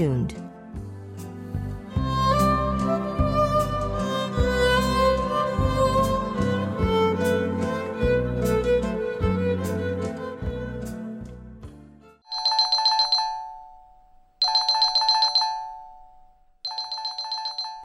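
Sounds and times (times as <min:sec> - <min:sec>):
speech: 0:00.0 - 0:00.5
brief low busy musical passage: 0:00.0 - 0:13.2
telephone ringing with rapid trilling electronic tones: 0:12.3 - 0:17.8.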